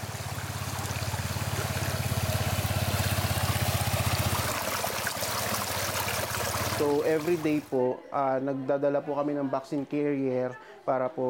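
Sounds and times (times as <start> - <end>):
river stream rushing: 0.0 - 7.8
speech: 6.8 - 11.2.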